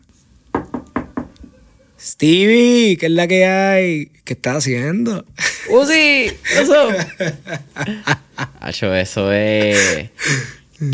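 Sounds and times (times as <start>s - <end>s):
knocking on the front door of a house: 0.5s - 1.4s
speech: 2.0s - 10.9s
laughter: 6.3s - 8.6s.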